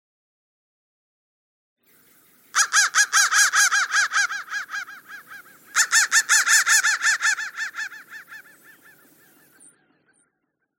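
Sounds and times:
crow producing harsh repeated caws: 2.5 - 9.6.

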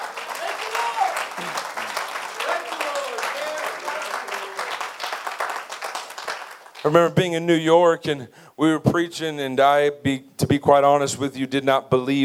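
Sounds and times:
congregation clapping: 0.0 - 7.3
speech: 6.8 - 12.2.

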